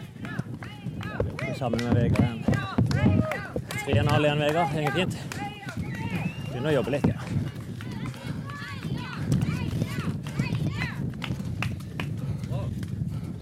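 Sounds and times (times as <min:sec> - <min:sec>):
steady thumping movement: 0:00.0 - 0:13.4
speech: 0:01.6 - 0:05.4, 0:06.6 - 0:07.4
heavy labored breathing from physical exertion: 0:07.2 - 0:09.5, 0:11.4 - 0:13.4.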